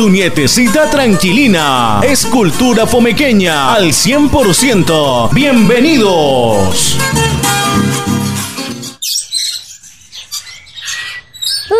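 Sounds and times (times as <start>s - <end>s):
speech: 0.0s - 8.0s
music: 0.0s - 9.0s
small birds chirping and singing: 8.9s - 11.7s.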